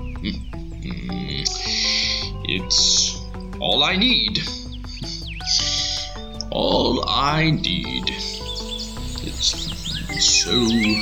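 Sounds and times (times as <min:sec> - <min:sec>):
speech: 0:00.2 - 0:01.9, 0:02.5 - 0:05.6, 0:06.5 - 0:08.4, 0:09.3 - 0:11.0
birds calling and singing outdoors: 0:07.9 - 0:11.0
steady hiss: 0:08.2 - 0:11.0.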